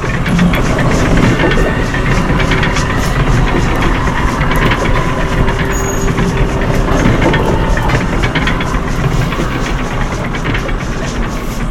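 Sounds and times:
steam locomotive pushing a rotary snow plow: 0:00.0 - 0:11.6.

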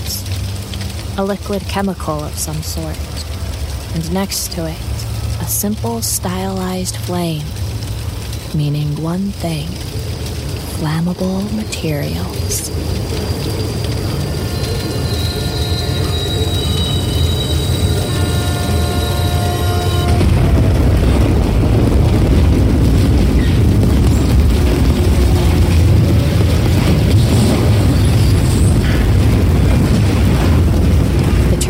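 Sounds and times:
train rumbling while striking at 50 miles per hour: 0:00.0 - 0:31.6
speech: 0:01.2 - 0:03.3, 0:03.9 - 0:07.6, 0:08.5 - 0:13.8
train crash of grinding tearing debris: 0:12.7 - 0:31.6
metal squealing as a train strikes at 50 miles per hour: 0:13.0 - 0:20.4.

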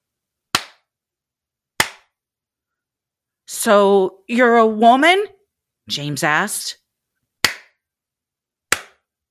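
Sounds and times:
hand claps in the woods: 0:00.5 - 0:00.9, 0:01.8 - 0:02.2, 0:07.4 - 0:07.8, 0:08.7 - 0:09.1
speech: 0:03.6 - 0:06.8.

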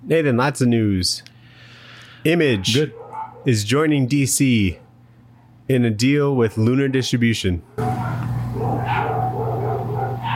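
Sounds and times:
steady low hum: 0:00.0 - 0:10.3
speech: 0:00.1 - 0:01.3, 0:02.2 - 0:04.8, 0:05.7 - 0:08.2
dogs barking: 0:02.4 - 0:03.6, 0:04.7 - 0:05.6, 0:07.7 - 0:10.3
dogs yipping and whimpering: 0:02.5 - 0:03.5, 0:07.8 - 0:10.3.

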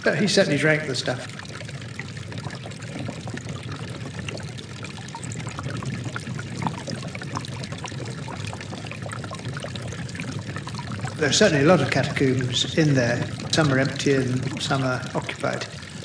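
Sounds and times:
speech: 0:00.0 - 0:01.5, 0:11.2 - 0:15.8
thin stream of spring water trickling into a pool or basin: 0:00.0 - 0:16.0.

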